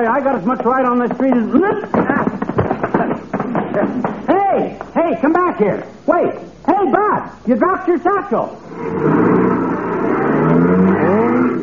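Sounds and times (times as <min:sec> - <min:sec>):
speech: 0:00.0 - 0:02.4, 0:03.8 - 0:09.6
car engine roaring as car accelerates hard away: 0:08.6 - 0:11.6.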